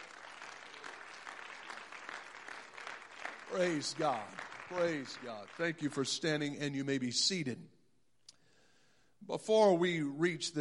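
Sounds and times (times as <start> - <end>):
room full of people applauding: 0.0 - 6.1
speech: 3.5 - 7.8, 9.3 - 10.5.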